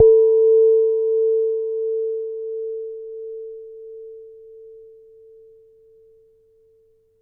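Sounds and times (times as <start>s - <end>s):
soft hit on a large wine glass: 0.0s - 5.6s.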